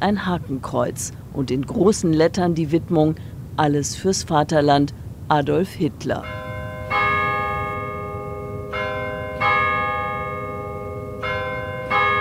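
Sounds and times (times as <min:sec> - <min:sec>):
speech: 0:00.0 - 0:06.4
church bell ringing the quarter hour: 0:06.2 - 0:12.1.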